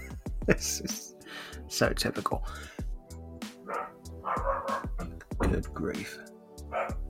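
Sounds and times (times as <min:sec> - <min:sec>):
speech: 0:00.5 - 0:01.1, 0:01.7 - 0:02.8, 0:05.5 - 0:06.9
dog barking: 0:03.7 - 0:05.1, 0:06.7 - 0:07.0.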